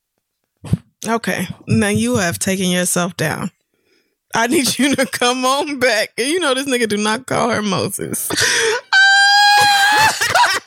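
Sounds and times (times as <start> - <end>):
speech: 1.0 - 3.6, 4.3 - 8.7
person screaming: 8.5 - 10.6.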